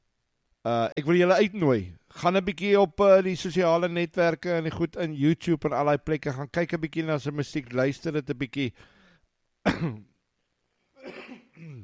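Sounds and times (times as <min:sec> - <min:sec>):
speech: 0:00.6 - 0:08.9, 0:09.6 - 0:10.1
person clearing throat: 0:09.6 - 0:10.2, 0:11.0 - 0:11.8.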